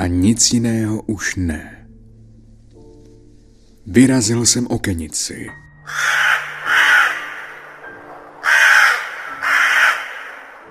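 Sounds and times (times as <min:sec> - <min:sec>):
speech: 0:00.0 - 0:01.8, 0:03.9 - 0:06.3
raven cawing: 0:05.8 - 0:10.7.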